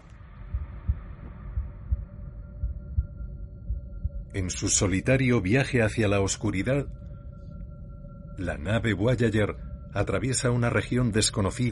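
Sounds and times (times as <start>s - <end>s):
human heartbeat recording from the Voyager discs: 0.0s - 4.4s
faint sustained hum: 0.0s - 11.7s
speech: 4.4s - 7.0s, 8.4s - 11.7s.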